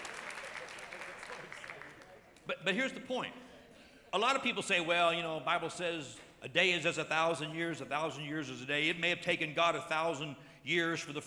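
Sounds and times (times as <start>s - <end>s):
audience clapping hands: 0.0s - 2.2s
speech: 2.5s - 3.5s, 4.1s - 11.2s.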